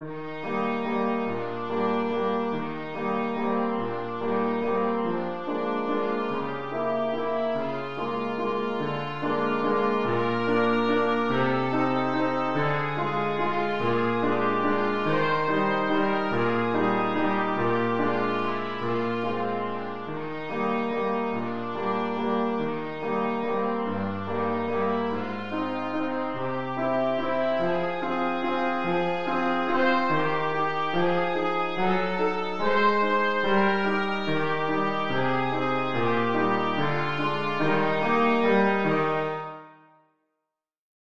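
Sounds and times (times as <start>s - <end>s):
trumpet playing a waltz: 0.7s - 39.6s.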